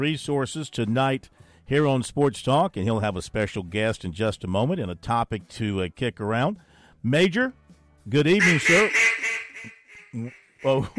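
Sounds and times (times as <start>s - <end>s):
speech: 0.0s - 9.0s, 9.6s - 10.9s
duck quacking from a duck call device: 8.4s - 10.9s.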